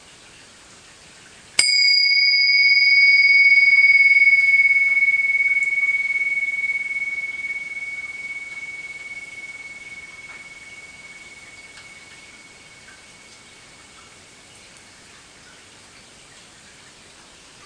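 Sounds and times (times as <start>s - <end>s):
small bell struck and ringing: 1.6s - 14.2s.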